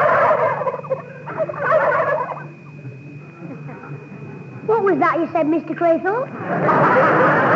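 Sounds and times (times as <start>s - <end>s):
laughter: 0.0s - 2.5s, 6.3s - 7.5s
turkeys gobbling behind a fence: 0.0s - 2.8s
speech: 5.0s - 7.5s.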